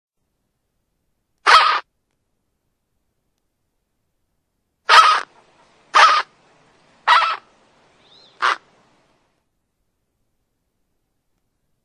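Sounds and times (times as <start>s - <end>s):
flamingo calls, short harsh nasal honks: 1.4s - 1.8s, 4.9s - 6.3s, 7.0s - 8.7s.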